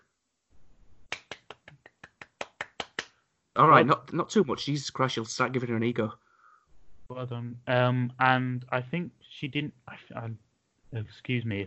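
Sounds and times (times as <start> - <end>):
faint hiss: 0.0 - 11.6
single pair of hands clapping: 1.1 - 3.2
speech: 3.6 - 6.2, 7.1 - 11.6.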